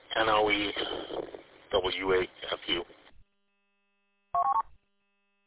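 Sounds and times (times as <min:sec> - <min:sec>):
speech: 0:00.3 - 0:03.0
plugged-in phone buzzing on a bench during a call: 0:04.3 - 0:04.7.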